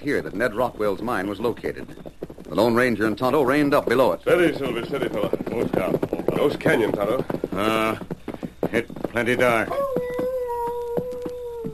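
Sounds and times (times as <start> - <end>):
speech: 0.0 - 8.1, 8.7 - 9.8
soft rhythmic thumps: 0.0 - 11.7
eerie sustained howling cry in a dark canyon: 9.7 - 11.7.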